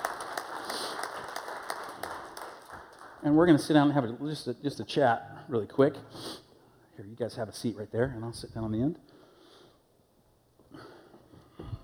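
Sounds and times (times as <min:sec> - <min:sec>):
small group clapping to welcome women coming up to the front: 0:00.0 - 0:03.6
speech: 0:03.2 - 0:06.3, 0:07.0 - 0:09.1.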